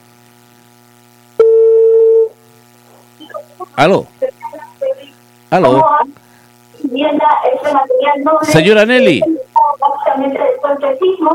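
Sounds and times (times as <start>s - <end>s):
steady mid-pitched telephone tone while placing a call: 1.4s - 2.4s
speech: 3.8s - 4.1s, 5.5s - 6.1s, 6.9s - 11.3s.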